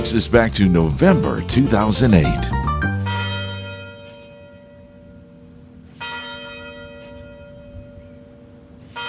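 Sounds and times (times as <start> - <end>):
speech: 0.0 - 2.7
University Tower bells ringing in Detroit: 0.0 - 9.0.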